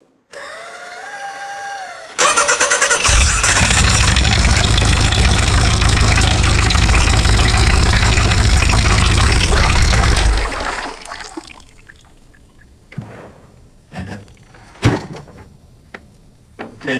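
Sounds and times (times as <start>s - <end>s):
vintage car engine starting and shutting off, heard from interior: 2.2s - 11.8s.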